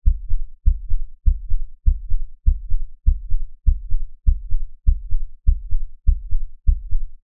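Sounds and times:
designed fast human heartbeat: 0.0 - 7.2.

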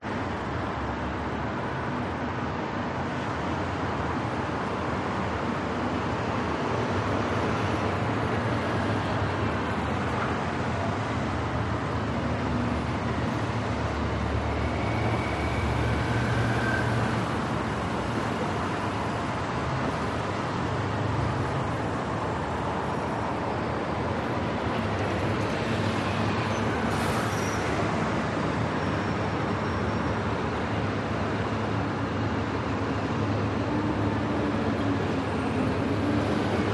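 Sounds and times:
construction noise: 0.0 - 36.7
heavy morning rush hour traffic: 0.0 - 36.7
Irish sirens: 14.5 - 17.4.

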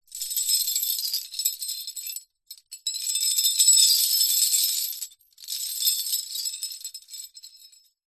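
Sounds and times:
small industrial chain jangling: 0.1 - 8.0.

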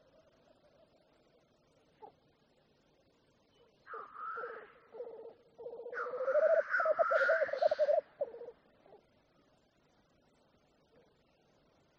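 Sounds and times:
black grouse bubbling cooing run of pulsed notes: 4.4 - 8.6
black grouse drawn-out harsh hissing calls: 5.9 - 8.0.

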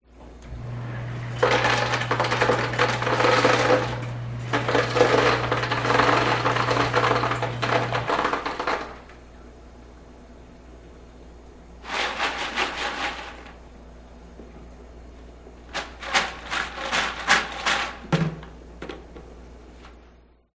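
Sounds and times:
ice maker machine operating: 0.4 - 9.4, 11.8 - 13.6, 15.7 - 18.4.

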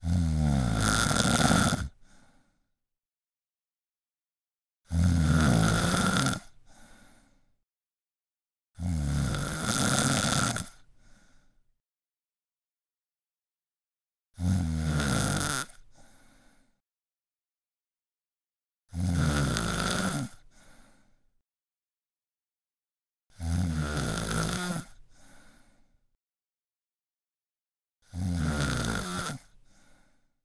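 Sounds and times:
woman snoring: 0.0 - 2.1, 4.9 - 6.6, 8.8 - 10.9, 14.4 - 16.1, 18.9 - 20.5, 23.3 - 25.4, 28.0 - 29.9.

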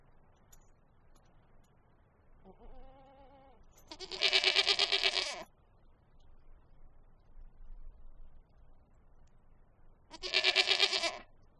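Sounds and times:
goat bleating: 2.4 - 5.5, 10.1 - 11.3.

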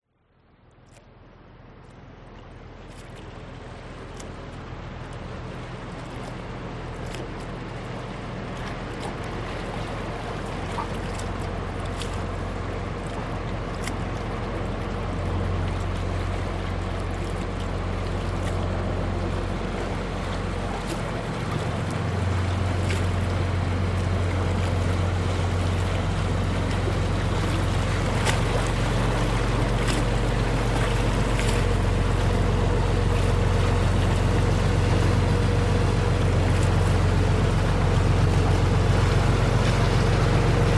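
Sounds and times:
small fishing boat motor passing by leaving harbour: 0.9 - 40.7
waves against rocks: 3.0 - 40.7.

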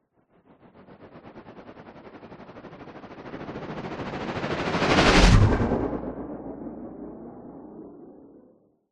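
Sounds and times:
sound design sweep stutter: 4.2 - 6.1.

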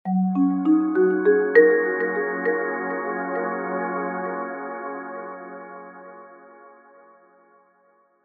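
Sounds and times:
warm soft marimba pad multimedia signature: 0.1 - 4.4.

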